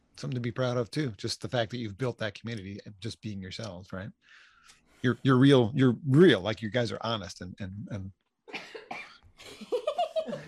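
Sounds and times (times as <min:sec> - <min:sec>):
speech: 0:00.2 - 0:08.7
person coughing: 0:08.5 - 0:09.2
laughter: 0:09.4 - 0:10.4.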